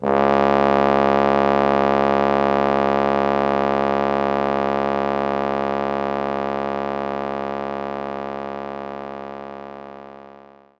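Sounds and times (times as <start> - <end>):
trombone note C#1: 0.0 - 7.8.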